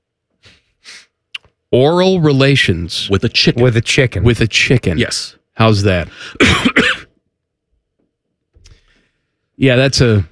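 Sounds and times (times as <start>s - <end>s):
speech: 1.7s - 7.0s, 9.6s - 10.3s
person coughing: 6.2s - 7.2s.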